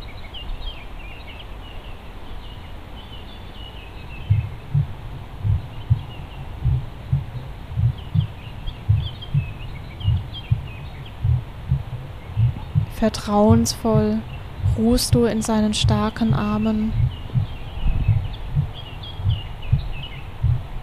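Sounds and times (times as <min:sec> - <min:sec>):
faint birdsong chirping: 0:00.0 - 0:20.8
heartbeat thumping in low double beats: 0:04.2 - 0:20.8
speech: 0:13.0 - 0:17.0.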